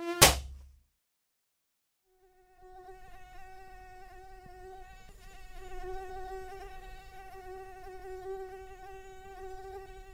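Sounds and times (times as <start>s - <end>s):
short thud: 0.2s - 0.7s
mosquito whining: 2.1s - 10.1s.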